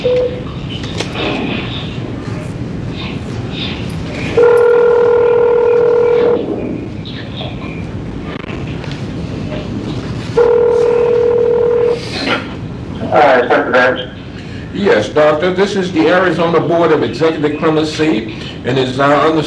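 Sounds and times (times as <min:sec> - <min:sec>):
short telephone keypad tones: 0:00.0 - 0:00.5, 0:04.4 - 0:06.4
room noise: 0:00.0 - 0:19.4
telephone dial tone: 0:04.4 - 0:06.4, 0:10.4 - 0:12.0
speech: 0:15.2 - 0:19.4.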